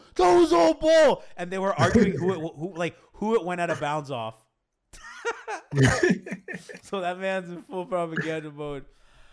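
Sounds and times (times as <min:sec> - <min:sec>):
speech: 0:00.2 - 0:09.0
laughter: 0:01.8 - 0:02.4, 0:05.0 - 0:06.9
raspy coughs: 0:01.8 - 0:02.4, 0:05.7 - 0:06.8.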